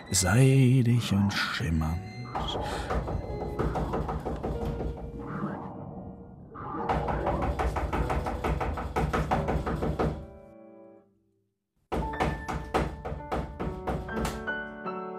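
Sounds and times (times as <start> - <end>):
speech: 0.1 - 4.1
loud insistent knocking on a door: 2.3 - 5.0, 6.9 - 10.3, 11.9 - 14.5.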